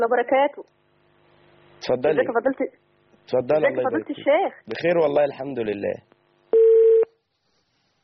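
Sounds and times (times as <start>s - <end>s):
speech: 0.0s - 0.8s, 1.8s - 6.1s
telephone electronic beep signalling an incoming call: 6.6s - 7.1s.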